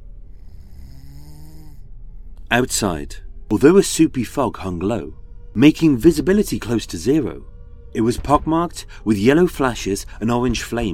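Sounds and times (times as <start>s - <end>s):
big man snoring: 0.3s - 1.9s
speech: 2.5s - 10.9s.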